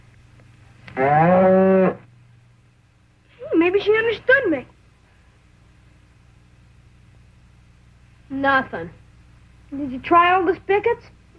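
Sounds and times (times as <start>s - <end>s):
quiet low hum: 0.0s - 11.3s
cow mooing while held to be milked: 0.9s - 2.0s
speech: 1.0s - 1.6s, 8.4s - 9.0s, 9.7s - 11.2s.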